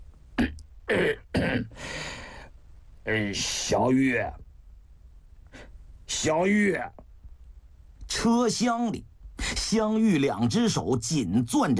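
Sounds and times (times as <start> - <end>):
speech: 0.4 - 1.7, 3.1 - 4.4, 6.2 - 7.0, 8.2 - 11.7
man clearing his throat: 0.4 - 1.8.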